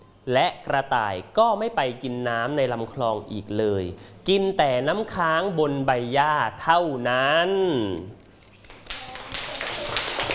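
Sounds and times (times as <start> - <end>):
speech: 0.2 - 8.2
group of children applauding: 8.5 - 10.3.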